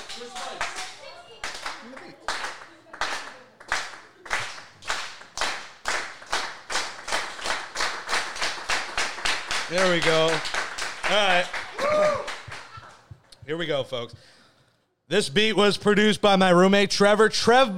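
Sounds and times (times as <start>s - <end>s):
slow hand clapping: 0.0s - 13.4s
speech: 9.7s - 12.3s, 13.5s - 14.4s, 15.1s - 17.7s.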